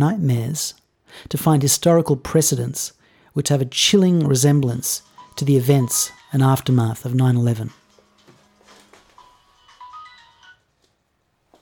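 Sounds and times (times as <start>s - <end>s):
speech: 0.0s - 7.8s
mobile phone ringtone melody: 5.0s - 7.0s, 7.7s - 10.9s.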